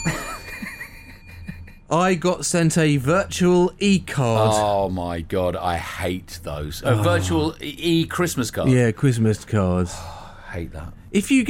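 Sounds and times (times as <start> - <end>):
small bell ringing: 0.0 - 1.8
speech: 1.9 - 11.4.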